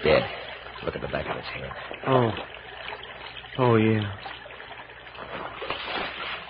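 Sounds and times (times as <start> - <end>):
water sloshing and splashing as a body is dropped into a creek: 0.0 - 6.4
speech: 0.2 - 2.6, 3.6 - 4.4.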